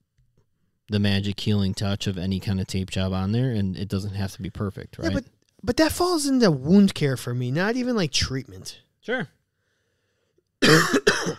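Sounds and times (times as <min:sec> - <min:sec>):
speech: 0:00.9 - 0:09.4, 0:10.6 - 0:11.3
harsh loud coughs: 0:10.6 - 0:11.3
raspy throat clearing: 0:10.6 - 0:11.3.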